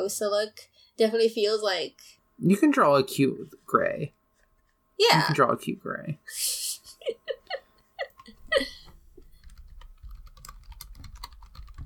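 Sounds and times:
speech: 0.0s - 4.2s, 5.0s - 7.4s, 8.5s - 8.8s
person laughing: 6.3s - 8.9s
fingers typing on a computer keyboard during an online search: 9.2s - 11.8s.

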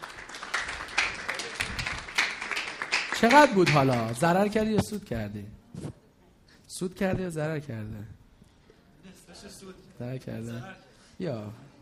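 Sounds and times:
applause from a small group: 0.0s - 4.3s
speech: 3.2s - 5.6s, 6.8s - 8.2s, 9.4s - 11.7s.

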